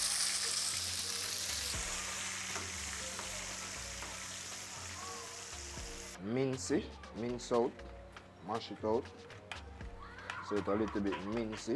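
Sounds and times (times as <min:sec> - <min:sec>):
oil sizzling and crackling in a hot pan as seasoning is added: 0:00.0 - 0:06.2
speech: 0:06.2 - 0:09.4, 0:10.5 - 0:11.7.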